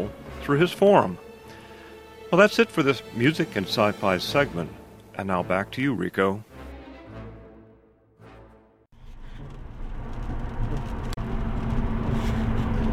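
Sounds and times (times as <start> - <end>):
speech: 0.0 - 1.2, 2.3 - 6.5
car driving on a two-lane highway: 9.4 - 12.9.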